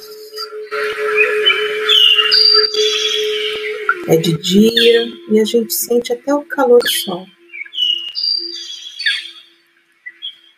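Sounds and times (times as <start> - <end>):
steady low tonal hum: 0.0 - 7.7
birds chirping and whistling in a field: 0.0 - 10.5
speech: 4.1 - 7.4.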